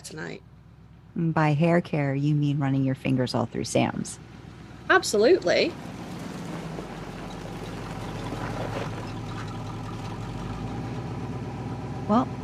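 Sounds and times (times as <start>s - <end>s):
car engine idling: 0.0s - 1.2s, 1.9s - 12.4s
speech: 0.1s - 0.5s, 1.2s - 4.3s, 4.9s - 5.9s, 12.1s - 12.3s
high-pitched squeak: 7.2s - 10.5s.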